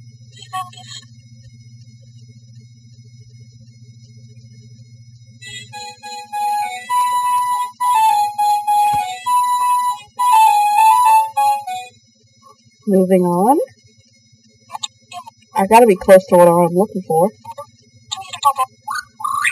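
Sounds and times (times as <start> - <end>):
low electrical hum: 0.0 - 19.4
speech: 0.4 - 1.2, 12.9 - 13.7, 15.6 - 17.4
synthetic MIDI phone ringtone melody: 5.4 - 11.9.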